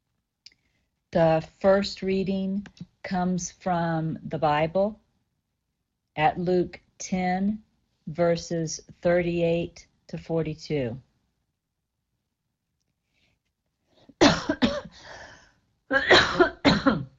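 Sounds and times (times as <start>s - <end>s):
speech: 1.1s - 5.0s, 6.2s - 11.1s
person coughing: 14.2s - 15.0s, 15.9s - 17.1s.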